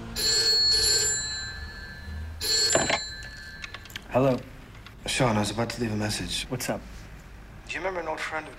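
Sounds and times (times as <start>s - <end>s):
telephone bell ringing: 0.2s - 4.2s
speech: 4.2s - 7.0s, 7.7s - 8.5s.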